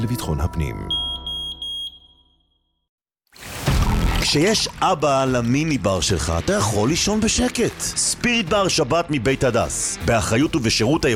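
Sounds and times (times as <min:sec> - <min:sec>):
speech: 0:00.0 - 0:01.0, 0:04.3 - 0:11.1
smoke detector alarm beeping: 0:00.9 - 0:02.6
burst of noise: 0:03.4 - 0:04.8.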